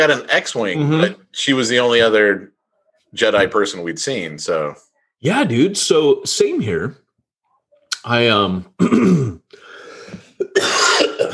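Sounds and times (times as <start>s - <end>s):
speech: 0.0s - 7.0s, 8.0s - 9.4s
person with a COVID cough coughing: 8.8s - 9.5s, 10.2s - 11.3s.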